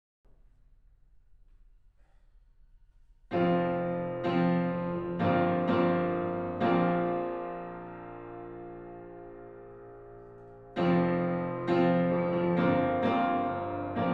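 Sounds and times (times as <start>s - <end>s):
piano in a room: 3.3s - 14.1s.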